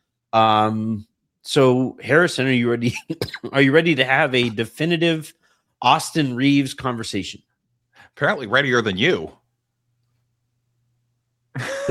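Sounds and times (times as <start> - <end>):
speech: 0.3 - 7.5, 8.1 - 9.4, 11.6 - 11.8
person coughing: 2.9 - 3.7, 11.6 - 11.8.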